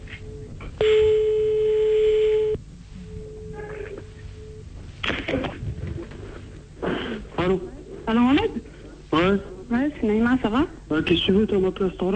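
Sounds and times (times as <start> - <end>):
noisy hissy background: 0.0 - 12.1
telephone ringback tone during a phone call: 0.2 - 4.7
speech: 11.1 - 12.1.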